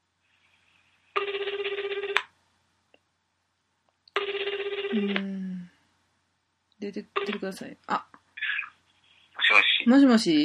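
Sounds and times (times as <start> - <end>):
telephone ringing on an outgoing call: 1.2 - 2.3, 4.2 - 5.1, 7.2 - 7.4
speech: 5.0 - 5.4, 6.8 - 8.1, 9.9 - 10.4.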